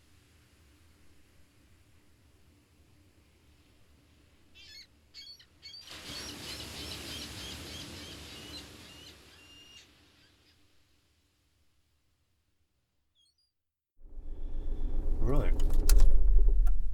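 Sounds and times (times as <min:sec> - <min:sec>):
outdoor traffic rumble in a car park by the water: 0:14.0 - 0:16.9.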